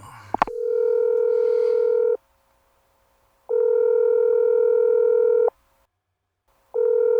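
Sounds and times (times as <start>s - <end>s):
telephone ringback tone while a call connects: 0.5s - 2.2s, 3.5s - 5.5s, 6.8s - 7.1s.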